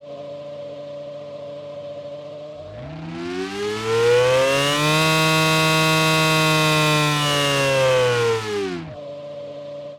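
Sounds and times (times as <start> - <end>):
V8 formula racing car engine: 2.6 - 9.0.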